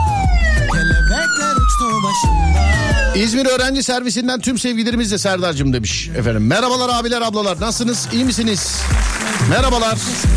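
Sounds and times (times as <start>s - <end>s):
police car siren wailing: 0.0s - 3.7s
rhythmic low thumps: 0.0s - 10.3s
speech: 2.1s - 10.3s.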